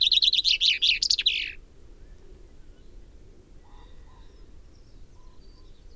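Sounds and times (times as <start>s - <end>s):
common chaffinch Fringilla coelebs singing a falling trill with a flourish: 0.0s - 1.6s.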